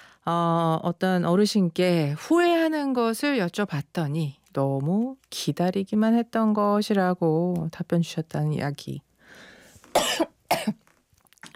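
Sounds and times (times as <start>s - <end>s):
speech: 0.2s - 10.8s
person coughing after something catches in the throat: 9.9s - 10.8s.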